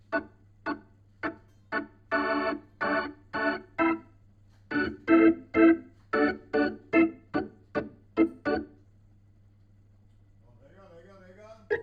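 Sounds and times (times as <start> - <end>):
Hammond organ through a Leslie rotating speaker: 0.0 - 8.9, 11.6 - 11.8.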